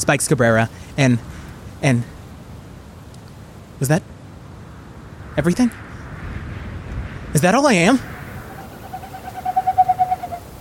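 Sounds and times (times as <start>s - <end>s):
speech: 0.0s - 2.2s, 3.8s - 4.1s, 5.4s - 5.8s, 7.3s - 8.1s
bird call: 8.3s - 10.5s.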